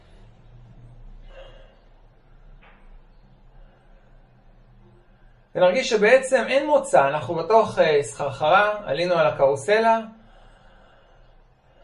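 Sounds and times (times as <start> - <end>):
strong circular breathing: 0.0 - 5.5, 10.1 - 11.8
steady low hum: 0.0 - 11.8
speech: 5.6 - 10.2.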